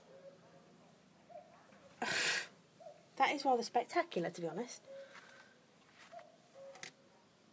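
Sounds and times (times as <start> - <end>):
speech: 3.2 - 4.9
common cuckoo calling outdoors: 4.8 - 5.2, 6.1 - 6.9.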